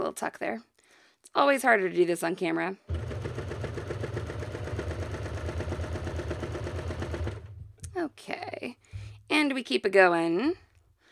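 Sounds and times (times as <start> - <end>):
speech: 0.2 - 3.5, 8.1 - 10.6
sewing machine stitching a two-thread flatlock seam on underwear fabric: 2.9 - 8.0.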